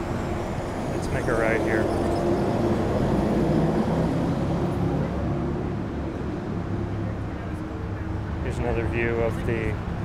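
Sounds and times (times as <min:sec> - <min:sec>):
city traffic noise: 0:00.0 - 0:10.0
speech: 0:01.1 - 0:02.4, 0:08.6 - 0:09.9.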